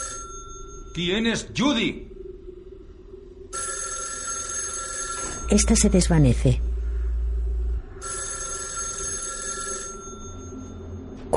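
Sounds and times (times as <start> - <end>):
telephone bell ringing: 0.0 - 1.0, 3.6 - 6.0, 8.0 - 11.1
low room hum: 0.0 - 11.3
speech: 1.0 - 2.1, 5.5 - 6.7.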